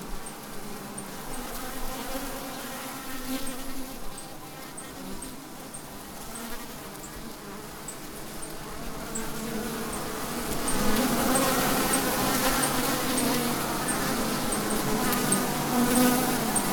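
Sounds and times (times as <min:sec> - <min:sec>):
bees buzzing inside a hive in a tree: 0:00.0 - 0:16.7
light high-pitched ticks: 0:10.6 - 0:16.7.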